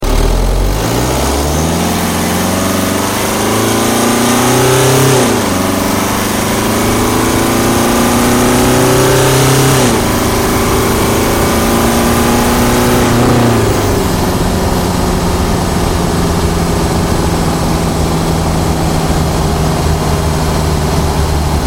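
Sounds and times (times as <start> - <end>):
BMW 320d car accelerating hard outside: 0.0 - 21.6.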